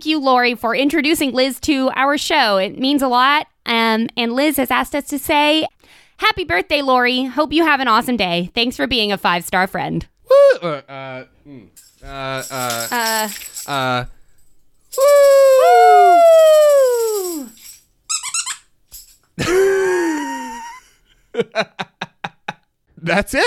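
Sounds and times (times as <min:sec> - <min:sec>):
speech: 0:00.0 - 0:14.2, 0:14.9 - 0:17.6, 0:19.4 - 0:20.1, 0:21.4 - 0:22.0, 0:23.0 - 0:23.4
dog toy squeaker squeezed: 0:18.1 - 0:18.8.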